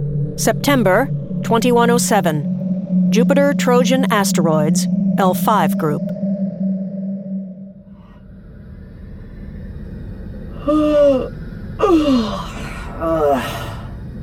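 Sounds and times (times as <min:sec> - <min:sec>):
faint rumbling background: 0:00.0 - 0:14.2
low steady hum: 0:00.0 - 0:14.2
speech: 0:00.4 - 0:06.1, 0:10.6 - 0:12.2
person yawning in breathy falling vocal swells: 0:10.6 - 0:13.9.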